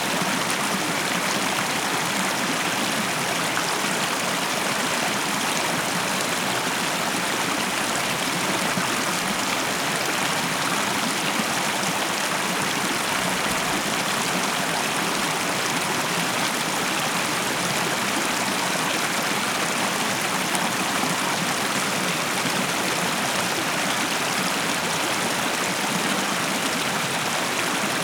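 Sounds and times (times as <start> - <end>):
stream flowing: 0.0 - 28.0.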